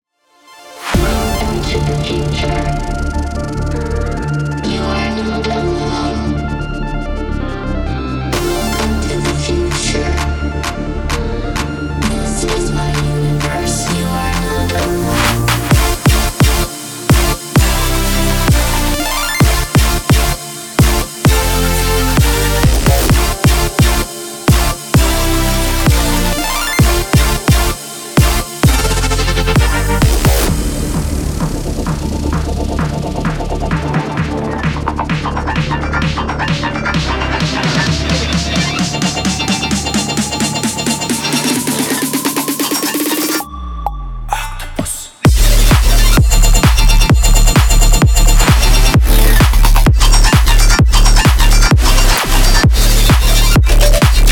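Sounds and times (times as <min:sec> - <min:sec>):
house music: 0:00.8 - 0:54.3.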